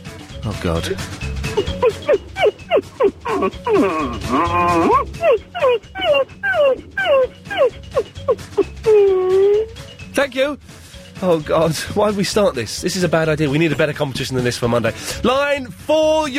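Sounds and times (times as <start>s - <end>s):
speech: 0.4s - 16.3s
person imitating a begging dog whimpering and whining: 1.5s - 9.8s.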